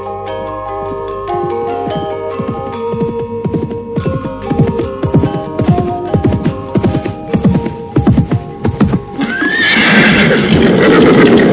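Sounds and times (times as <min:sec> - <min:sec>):
horse hooves clopping: 0:00.2 - 0:11.5
horse neighing: 0:09.1 - 0:11.5.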